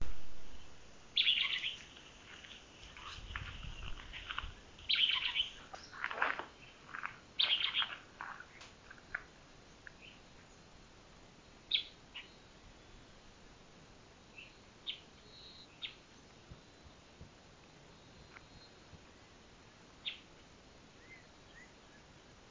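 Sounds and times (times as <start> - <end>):
Lesser elaenia: 1.2 - 10.2, 11.7 - 13.0, 21.0 - 22.1.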